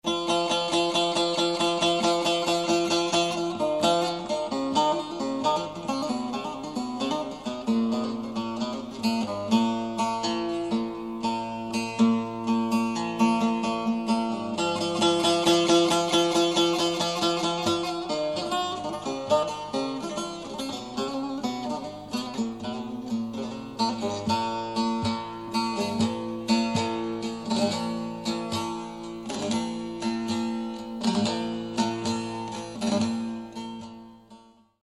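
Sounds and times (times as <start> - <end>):
solo saz playing: 0.0 - 34.4.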